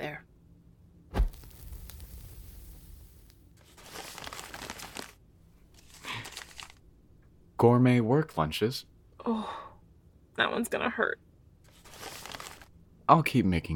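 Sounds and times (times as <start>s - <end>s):
sheet of paper with writing crumpling and tearing: 1.3s - 6.8s, 11.7s - 12.7s
speech: 7.6s - 9.6s, 10.4s - 11.3s, 13.1s - 13.7s.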